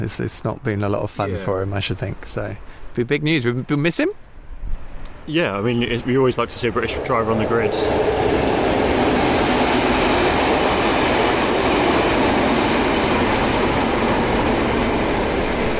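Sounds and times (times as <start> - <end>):
speech: 0.0 - 4.2, 5.3 - 8.4
freight train rumbling past: 4.8 - 15.7.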